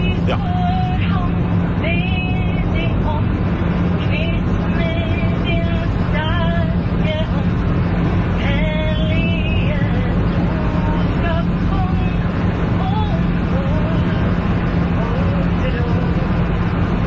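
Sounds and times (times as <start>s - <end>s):
indistinct voices of passengers murmuring: 0.0s - 1.1s
airplane engine drone in a cabin in flight: 0.0s - 17.0s
constant low hum in an airplane cabin: 0.0s - 17.0s
speech: 0.3s - 0.8s.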